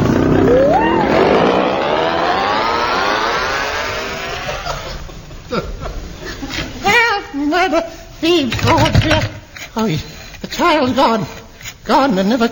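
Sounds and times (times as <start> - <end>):
outboard motor engine revving: 0.0 - 4.8
laughter: 0.7 - 6.8
speech: 7.7 - 12.5.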